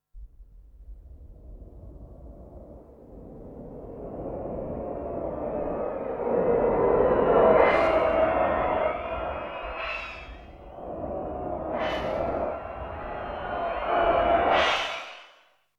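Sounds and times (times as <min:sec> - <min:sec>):
whoosh: 0:04.8 - 0:15.5
hiss: 0:07.6 - 0:15.5.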